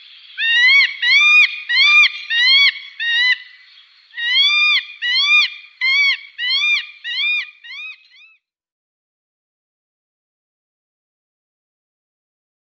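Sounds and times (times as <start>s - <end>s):
Northern goshawk calling with harsh nasal notes: 0.0s - 8.4s.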